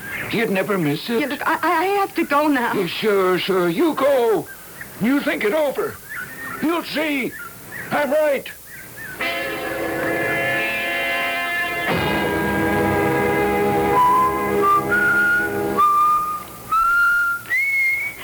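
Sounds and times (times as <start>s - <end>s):
speech: 0.3s - 6.0s, 6.6s - 8.6s
sustained rich droning tone: 9.2s - 16.7s
person whistling a tune: 13.8s - 18.2s.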